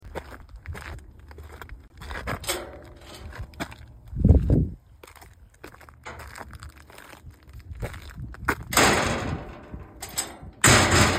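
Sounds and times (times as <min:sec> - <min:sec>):
wooden gate noises at an entrance: 0:02.0 - 0:04.2, 0:05.9 - 0:07.1, 0:08.7 - 0:11.1.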